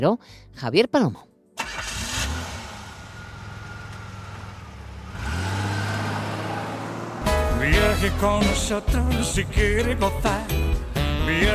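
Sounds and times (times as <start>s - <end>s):
speech: 0.0s - 1.9s, 7.6s - 10.6s, 11.3s - 11.5s
car engine starting: 1.6s - 10.5s.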